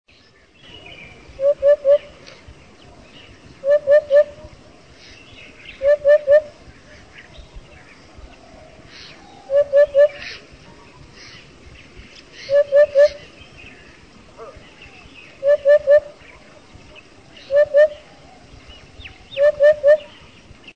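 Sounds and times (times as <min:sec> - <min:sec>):
common hoopoe calling: 0:01.2 - 0:02.4, 0:03.6 - 0:04.6, 0:05.7 - 0:07.1, 0:08.8 - 0:11.4, 0:12.4 - 0:13.4, 0:14.4 - 0:18.5, 0:19.2 - 0:20.3.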